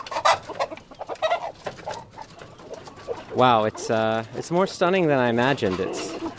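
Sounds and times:
black rooster clucking as it is pulled from a bamboo coop: 0.0 - 4.2, 5.6 - 6.3
speech: 3.4 - 6.1.

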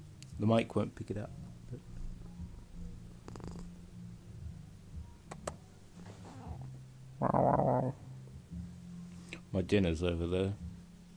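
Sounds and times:
speech: 0.4 - 1.9, 9.6 - 10.6
cat purring: 1.8 - 4.1, 6.0 - 8.7.

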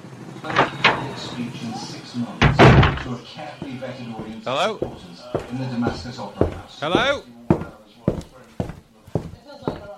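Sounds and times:
soft voices murmuring: 0.1 - 9.9
speech: 1.2 - 7.4
door closing thud with a rattle: 2.4 - 3.2.

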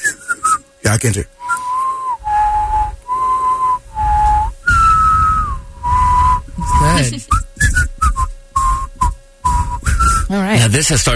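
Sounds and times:
person whistling a simple tune with their lips: 0.0 - 0.6, 1.4 - 10.3
speech: 0.9 - 1.4, 7.0 - 7.4, 10.6 - 11.1.

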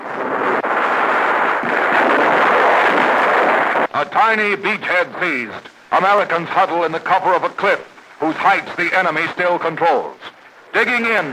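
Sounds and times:
navy artillery shells bursting during a wartime beach landing under fire: 0.0 - 11.3
speech: 4.0 - 11.3.

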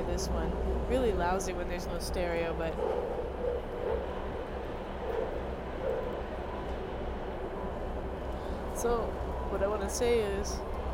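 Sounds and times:
Amtrak passenger train rumbling: 0.0 - 10.9
speech: 0.2 - 4.2, 8.8 - 10.7.

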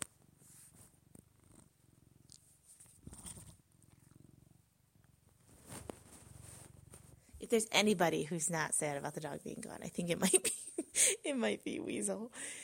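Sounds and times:
cat purring: 0.0 - 10.2
speech: 7.5 - 12.6.

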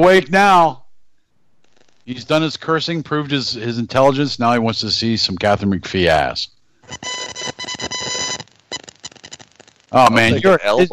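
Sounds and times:
speech: 0.0 - 0.8, 2.1 - 7.1, 9.9 - 10.9
rapid electronic beeping: 6.8 - 10.9.

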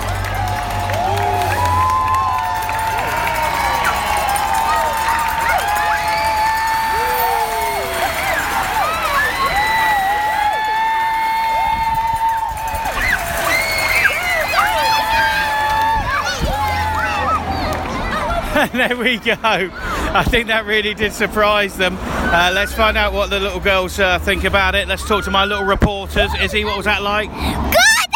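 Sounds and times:
roadside crowd in Acworth cheering as a cycling race peloton passes: 0.0 - 18.7
laughter: 18.1 - 20.3
speech: 18.8 - 28.0.

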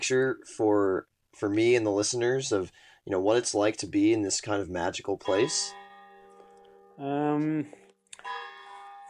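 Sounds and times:
speech: 0.0 - 5.8, 7.0 - 8.4
church bell ringing in small town: 5.0 - 9.0.

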